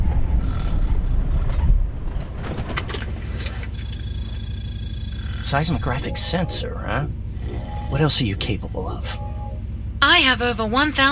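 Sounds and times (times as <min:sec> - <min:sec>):
truck brake mechanical creaks and squeaks: 0:00.0 - 0:06.1
truck low engine rumble slowing: 0:00.0 - 0:11.1
speech: 0:05.5 - 0:07.2, 0:07.9 - 0:09.2, 0:10.1 - 0:11.1.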